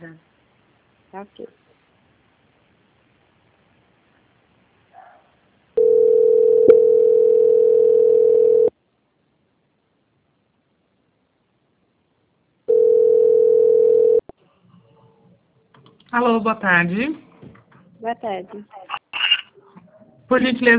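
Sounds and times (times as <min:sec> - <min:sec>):
speech: 0:01.1 - 0:01.6, 0:16.2 - 0:17.2, 0:18.0 - 0:18.9, 0:20.3 - 0:20.7
telephone line tone while a bank call is transferred: 0:05.8 - 0:08.7, 0:12.7 - 0:14.2.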